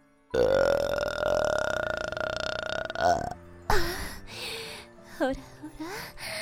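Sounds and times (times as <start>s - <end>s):
person burping: 0.3s - 3.8s.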